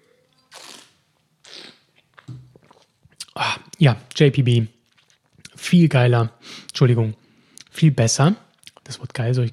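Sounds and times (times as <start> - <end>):
slurping sips of wine in front of a microphone: 0.5 - 1.8
speech: 3.4 - 4.8, 5.7 - 7.2, 7.8 - 9.5.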